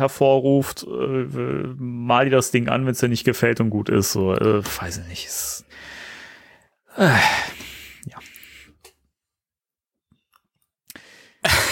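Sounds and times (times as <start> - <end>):
speech: 0.0 - 6.0, 7.0 - 8.2
quiet breaths: 5.7 - 8.9, 10.9 - 11.7
person yawning: 6.9 - 8.2.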